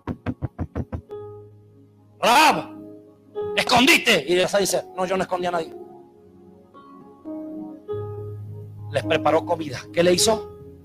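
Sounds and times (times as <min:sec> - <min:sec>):
knocking on a door: 0:00.0 - 0:01.1
speech: 0:02.2 - 0:02.7, 0:03.6 - 0:05.8, 0:09.0 - 0:10.5.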